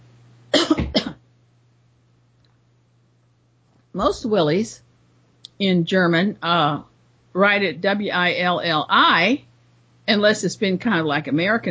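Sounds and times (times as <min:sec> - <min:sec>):
faint steady hum: 0:00.0 - 0:11.7
person coughing harshly: 0:00.5 - 0:01.2
speech: 0:04.0 - 0:04.8, 0:05.6 - 0:09.5, 0:10.1 - 0:11.7.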